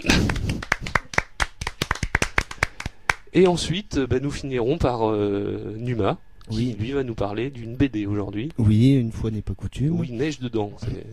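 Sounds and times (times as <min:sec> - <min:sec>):
applause from a small studio audience: 0:00.0 - 0:03.3
speech: 0:03.4 - 0:11.1.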